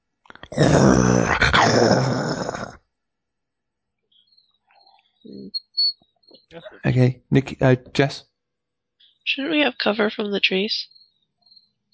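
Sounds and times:
dog growling: 0:00.4 - 0:02.8
low grunt: 0:00.4 - 0:02.8
speech: 0:00.6 - 0:00.9, 0:06.8 - 0:08.3, 0:09.3 - 0:10.9
faint chirps: 0:04.1 - 0:07.5, 0:10.8 - 0:11.9.

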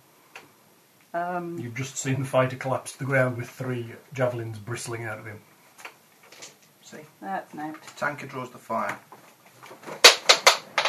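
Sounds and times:
speech: 0:01.2 - 0:05.5, 0:06.9 - 0:09.1
die clattering and bouncing on a floor: 0:09.7 - 0:10.8.

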